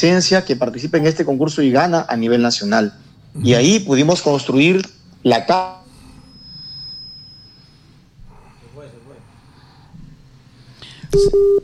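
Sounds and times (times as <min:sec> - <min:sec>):
speech: 0:00.0 - 0:05.8, 0:11.1 - 0:11.6
incoming phone call beeps during a dropping connection: 0:11.1 - 0:11.6.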